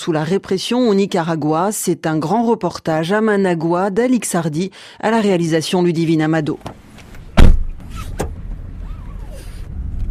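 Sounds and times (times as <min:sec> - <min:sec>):
speech: 0:00.0 - 0:06.8
moving car engine and road rumble at night: 0:06.6 - 0:10.0
sharp loud thump inside a moving car: 0:07.3 - 0:08.4
faint squeaks inside a moving car: 0:07.8 - 0:09.7.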